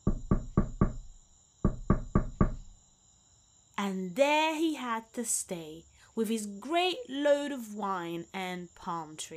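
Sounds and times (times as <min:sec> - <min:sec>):
sharp knocking on a gate: 0:00.0 - 0:02.7
speech: 0:03.8 - 0:09.3.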